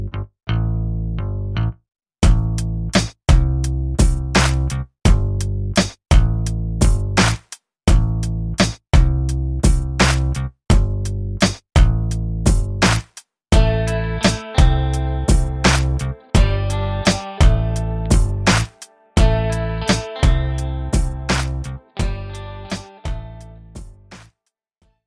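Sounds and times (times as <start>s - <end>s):
instrumental music excerpt: 0.6s - 24.3s.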